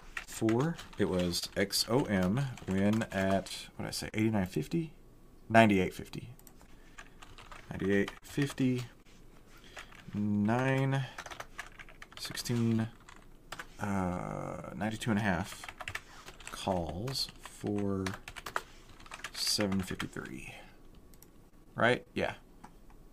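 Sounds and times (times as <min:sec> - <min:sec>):
typing on a computer keyboard: 0:00.2 - 0:03.5, 0:06.4 - 0:08.9, 0:09.8 - 0:13.7, 0:15.5 - 0:20.4
speech: 0:00.4 - 0:06.4, 0:07.7 - 0:09.0, 0:10.1 - 0:11.2, 0:12.2 - 0:13.0, 0:13.8 - 0:15.7, 0:16.6 - 0:18.3, 0:19.5 - 0:20.6, 0:21.8 - 0:22.4.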